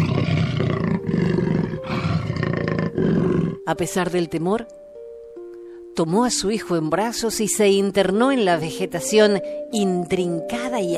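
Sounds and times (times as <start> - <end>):
jaguar roaring: 0.0 - 3.6
speech: 3.7 - 4.8, 6.0 - 10.9.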